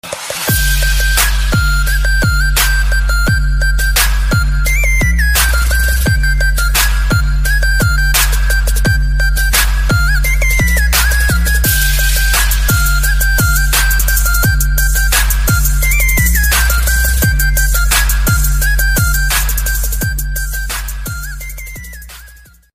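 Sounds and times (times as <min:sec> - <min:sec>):
Arabic music: 0:00.0 - 0:22.7.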